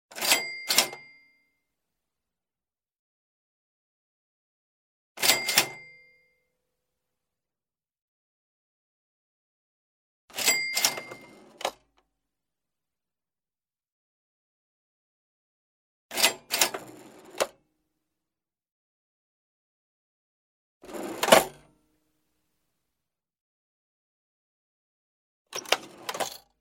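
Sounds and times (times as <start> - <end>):
various sounds of an old cash register: 0.1 - 1.3, 5.2 - 6.1, 10.3 - 12.0, 16.1 - 17.6, 20.8 - 21.7, 25.5 - 26.5.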